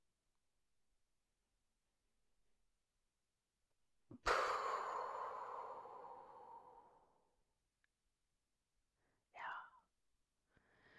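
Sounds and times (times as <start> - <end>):
long deep exhale during a breathing exercise: 4.2 - 7.2.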